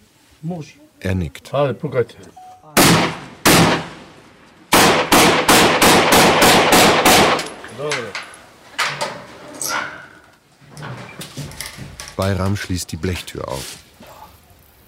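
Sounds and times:
speech: 0.4 - 2.4, 7.8 - 8.3, 12.2 - 13.8
celebratory gunshots fired outdoors at midnight: 2.8 - 4.1, 4.7 - 7.6.

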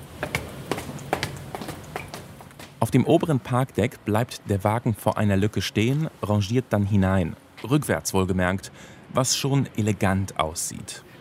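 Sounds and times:
footsteps running up stairs in a multi-storey car park: 0.0 - 2.8
speech: 0.2 - 0.5, 2.8 - 11.1.

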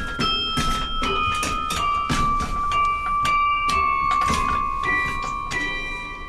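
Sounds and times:
carillon bells struck while wire length is adjusted: 0.0 - 6.2.

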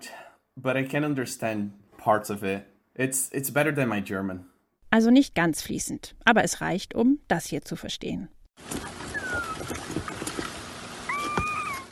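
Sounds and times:
speech: 0.6 - 8.9
steady rushing watery noise: 8.6 - 11.8
Tabasco turtle hatchlings whistling chirps: 8.7 - 10.3.

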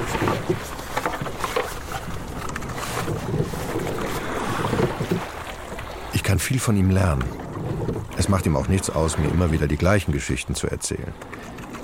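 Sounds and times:
rowing boat splashing and lapping over water: 0.0 - 11.8
speech: 6.4 - 7.4, 8.2 - 11.6.

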